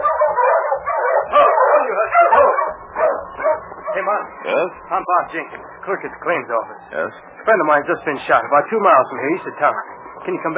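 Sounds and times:
sled dog team barking and yipping excitedly in light snowfall: 0.0 - 4.6
speech: 4.1 - 10.5.

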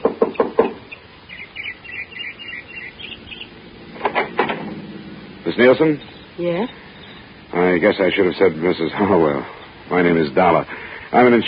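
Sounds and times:
knocking on the front door of a small house: 0.0 - 0.8
faint high chirping: 0.3 - 4.0, 4.6 - 10.5
speech: 5.5 - 6.9, 7.6 - 11.4.

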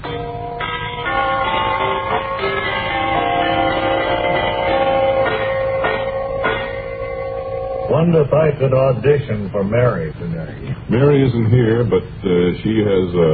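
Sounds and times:
door chimes ringing: 0.0 - 8.4
speech: 8.0 - 13.3.

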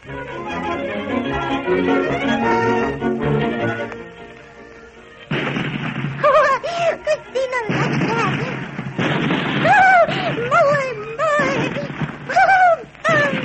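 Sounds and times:
orchestral music: 0.0 - 13.4
speech: 1.7 - 2.5
cannons firing: 5.2 - 13.4.

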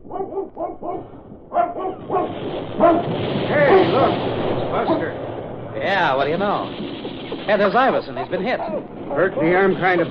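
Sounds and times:
dog barking: 0.0 - 3.1, 8.2 - 8.9
speech: 0.8 - 5.2, 5.8 - 10.0.

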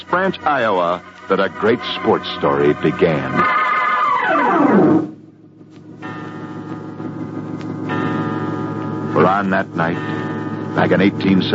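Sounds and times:
speech: 0.0 - 3.6, 9.2 - 10.2, 10.8 - 11.5
clock striking twelve at midnight in a village blacksmith's home: 0.0 - 5.2, 6.0 - 11.5
falling musical sweep: 0.0 - 5.2
steady sustained tones with a soft ticking texture: 0.0 - 11.5.

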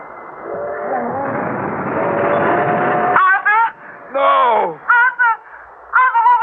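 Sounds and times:
faint tonal whine or horn-like notes: 0.0 - 4.0
train roaring as it approaches a level crossing: 0.0 - 6.3.

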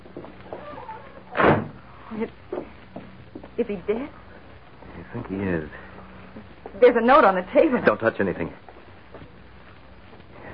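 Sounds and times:
door swinging shut with a solid thud: 1.3 - 1.8
speech: 2.1 - 2.6, 3.6 - 4.2, 5.1 - 8.6.

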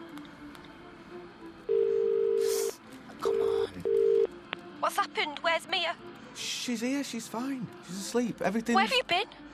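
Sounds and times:
steady electronic phone line tone: 1.7 - 2.5, 3.3 - 4.3
speech: 5.1 - 9.5.

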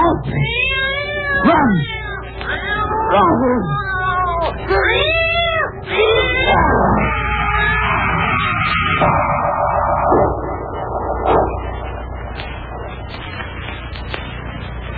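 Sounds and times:
cat meowing and yowling: 0.0 - 8.2
speech: 1.4 - 1.9, 3.1 - 3.8
steady low hum: 6.7 - 14.9.

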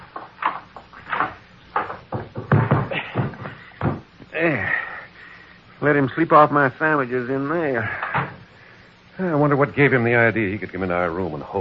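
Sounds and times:
linen closet door opening and shutting: 0.0 - 4.1, 8.0 - 8.4
wooden knocks and clunks: 0.0 - 4.1
speech: 4.4 - 4.8, 5.8 - 8.0, 9.2 - 11.5.

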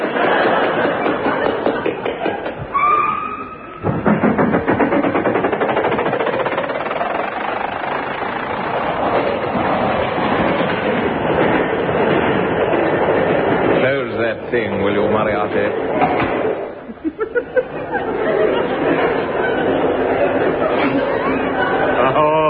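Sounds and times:
laughter: 0.0 - 2.7, 16.8 - 22.4
train rumbling and clattering along the rails: 0.0 - 2.9, 3.7 - 22.4
brief whistle-like tone: 2.7 - 3.8.

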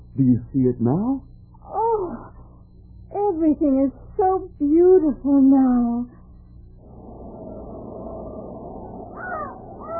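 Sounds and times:
speech: 0.2 - 1.3, 3.3 - 6.2
steady low rumble: 1.2 - 9.9
raven cawing with hoarse calls: 7.1 - 9.9.

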